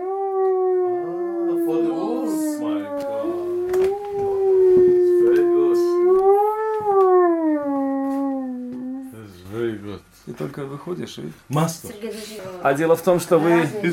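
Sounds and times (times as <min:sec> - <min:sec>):
hunting call instrument imitating a wolf howl: 0:00.0 - 0:09.2
speech: 0:10.6 - 0:13.9.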